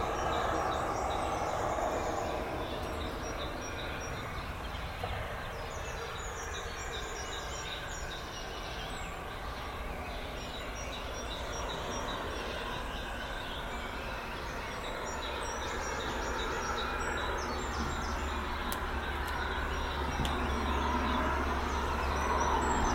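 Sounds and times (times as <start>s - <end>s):
city activity on a May morning in Sochi: 0.0s - 22.9s
nature sounds on a May morning in Sochi: 0.0s - 22.9s.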